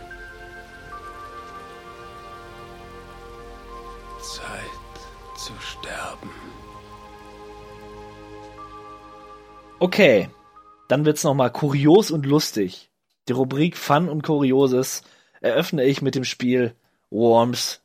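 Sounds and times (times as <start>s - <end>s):
steady rain: 0.0s - 12.4s
speech: 4.2s - 4.8s, 5.4s - 6.7s, 9.8s - 17.8s.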